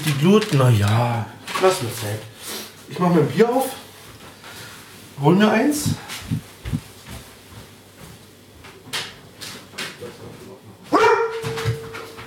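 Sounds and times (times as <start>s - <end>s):
speech: 0.0s - 2.3s, 2.9s - 3.8s, 5.2s - 6.8s
dog barking and whining: 10.9s - 12.2s.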